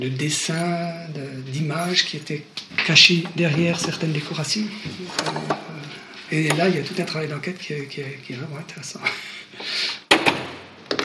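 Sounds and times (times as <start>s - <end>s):
speech: 0.0s - 5.6s, 6.3s - 10.0s
heavy wooden door swinging open with scraping creak: 4.9s - 7.2s.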